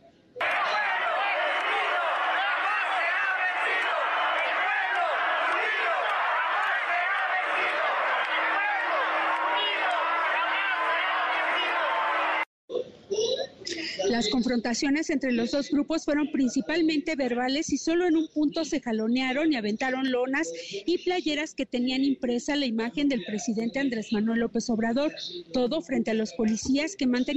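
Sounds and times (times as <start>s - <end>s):
protest crowd chanting slogans in front of the Judicial Power building in Mexico: 0.4s - 12.4s
speech: 14.2s - 27.3s.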